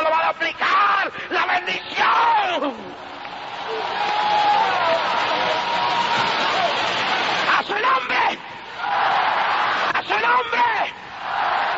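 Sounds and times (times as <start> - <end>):
worship audience shouting together at a night worship service: 0.7 - 11.7.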